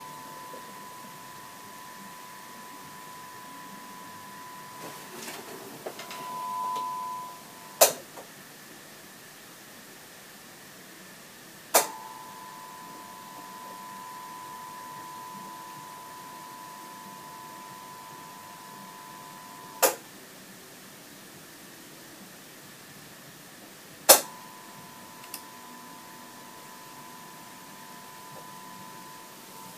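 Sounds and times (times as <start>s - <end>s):
7 watt LED lamp humming: 0.0s - 8.0s, 11.7s - 20.0s, 24.1s - 29.7s.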